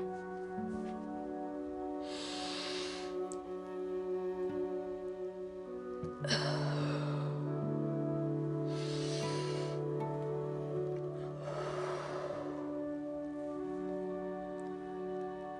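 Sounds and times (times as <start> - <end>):
steady soft instrumental music: 0.0 - 15.5
slow deliberate breaths of a diaphragmatic breathing exercise: 1.8 - 3.5, 6.2 - 13.6.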